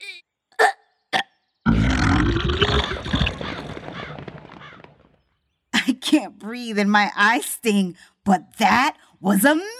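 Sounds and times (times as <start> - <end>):
loud rumbling gravelly burp: 1.7 - 3.8
croaky bursts: 1.7 - 5.1
speech: 6.1 - 9.7.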